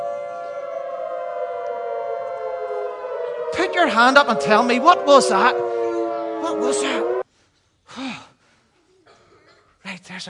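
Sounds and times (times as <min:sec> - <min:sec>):
air raid siren wailing: 0:00.0 - 0:07.2
speech: 0:03.7 - 0:05.8, 0:06.4 - 0:07.2, 0:10.1 - 0:10.2.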